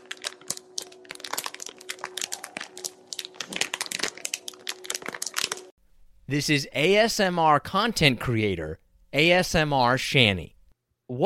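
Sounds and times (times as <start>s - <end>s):
crinkling plastic package of wipes being handled: 0.0s - 5.7s
speech: 6.3s - 10.5s.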